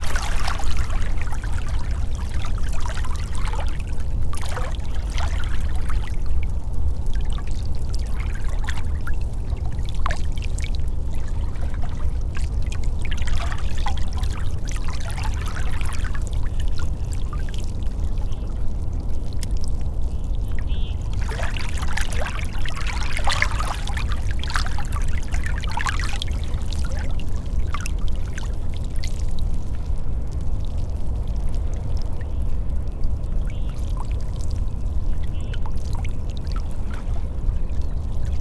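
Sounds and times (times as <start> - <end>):
stronger waves at Oxford Island on Lough Neagh: 0.0 - 38.3.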